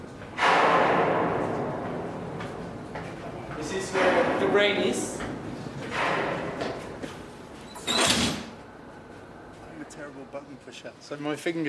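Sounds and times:
steady industrial noise: 0:00.0 - 0:11.6
heavy metallic bang of shipping containers during cargo loading: 0:00.4 - 0:02.2, 0:03.7 - 0:05.2, 0:05.9 - 0:06.7
speech: 0:03.7 - 0:05.4, 0:10.3 - 0:11.6.

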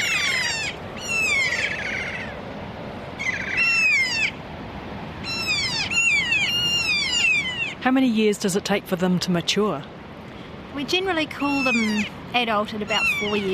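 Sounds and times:
kea parrots giving harmonic drawn-out screeching calls: 0:00.0 - 0:02.4, 0:03.2 - 0:04.4, 0:05.2 - 0:07.8, 0:11.4 - 0:12.2, 0:12.9 - 0:13.5
steady outdoor noise: 0:00.0 - 0:13.5
speech: 0:07.9 - 0:10.0, 0:10.8 - 0:13.5.

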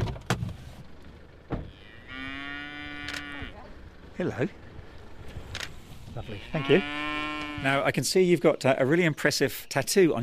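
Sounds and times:
faint outdoor noise on a farm: 0:00.0 - 0:10.2
cow mooing on a farm: 0:01.6 - 0:03.7, 0:06.1 - 0:07.9
speech: 0:04.2 - 0:04.6, 0:06.2 - 0:10.2.

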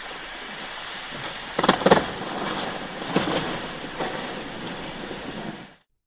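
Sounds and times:
hiss of melting glacier ice: 0:00.0 - 0:05.8
pops and crackles of melting glacier ice: 0:01.1 - 0:04.9.

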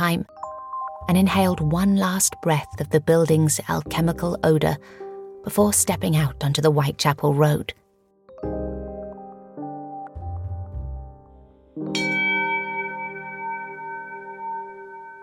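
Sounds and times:
speech: 0:00.0 - 0:00.4, 0:01.0 - 0:07.8
bell ringing: 0:11.9 - 0:15.2.

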